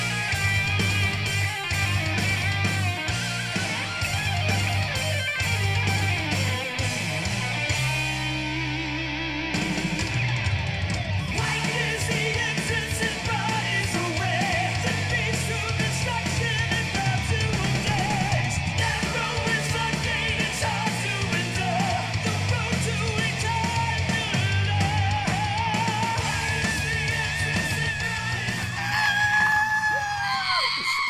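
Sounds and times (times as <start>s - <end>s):
dense distorted guitars: 0.0s - 31.0s
new heavy metal song by a California band: 0.0s - 31.0s
harsh screamed vocals: 26.0s - 31.0s.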